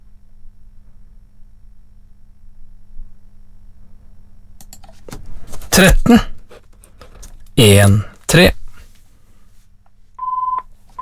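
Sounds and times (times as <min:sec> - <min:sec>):
faint low hum: 0:00.0 - 0:10.9
speech: 0:05.8 - 0:06.4, 0:07.6 - 0:08.6
telephone ringing with an electronic tone: 0:10.2 - 0:10.9.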